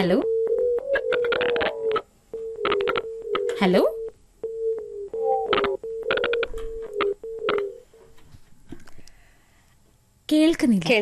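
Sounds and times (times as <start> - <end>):
speech: 0.0 - 0.3, 3.6 - 4.0, 10.6 - 11.0
overlapping higher chirps on a telephone line: 0.0 - 8.1
telephone line dialing tones from an incoming call to a radio show: 0.0 - 8.1.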